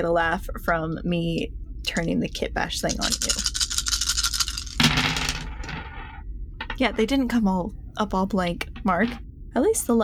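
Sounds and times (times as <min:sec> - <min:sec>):
speech: 0:00.0 - 0:03.6, 0:06.8 - 0:10.0
dice rattling on a hard surface: 0:02.9 - 0:06.9.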